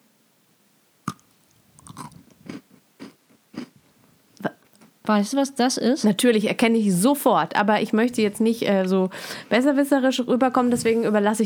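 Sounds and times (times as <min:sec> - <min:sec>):
biting and crunchy chewing of a Christmas cookie: 0:01.0 - 0:03.8
speech: 0:05.1 - 0:11.4.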